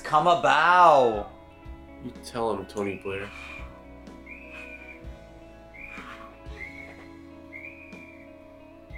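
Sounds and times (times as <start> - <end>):
speech: 0.1 - 1.4, 2.0 - 3.6
shrill whistle being blown: 4.2 - 5.1, 5.7 - 8.3.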